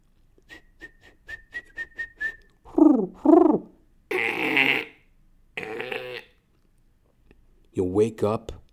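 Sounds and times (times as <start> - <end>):
person whistling quick bright chirps imitating birdsong: 0.5 - 3.6
speech: 8.0 - 8.6.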